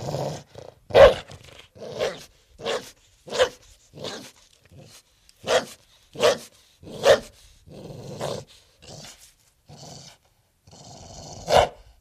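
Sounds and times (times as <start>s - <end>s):
pit bull barking in short sharp woofs: 0.9s - 1.3s, 2.0s - 4.3s, 5.4s - 7.3s, 11.5s - 11.9s.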